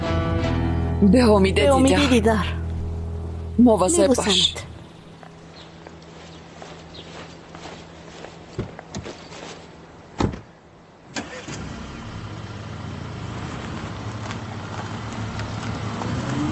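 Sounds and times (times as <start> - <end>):
approaching car engine rumbling: 0.8 - 10.3, 11.2 - 16.4
speech: 1.0 - 2.6, 3.6 - 4.6
sharp knocks and thumps: 8.6 - 9.2, 10.2 - 10.5.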